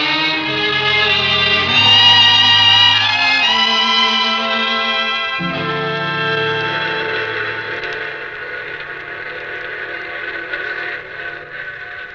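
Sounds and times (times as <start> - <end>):
long steady train whistle: 0.0 - 9.4.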